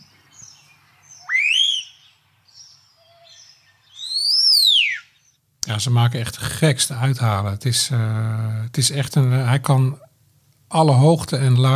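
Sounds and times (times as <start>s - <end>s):
faint bird chirps: 0.0s - 5.4s
starling giving loud sweeping whistles: 0.0s - 5.4s
speech: 5.7s - 10.1s, 10.7s - 11.7s.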